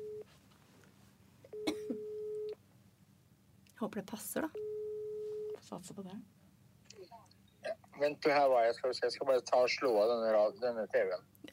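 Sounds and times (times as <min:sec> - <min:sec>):
telephone ringing tone down the line: 0:00.0 - 0:00.2, 0:01.9 - 0:02.6, 0:04.6 - 0:05.6
speech: 0:03.8 - 0:04.6, 0:05.7 - 0:06.4, 0:08.0 - 0:11.5.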